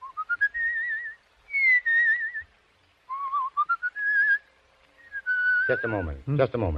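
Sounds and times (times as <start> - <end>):
person whistling a slow wavering melody: 0.0 - 2.5, 3.1 - 4.4, 5.0 - 6.1
speech: 5.7 - 6.7.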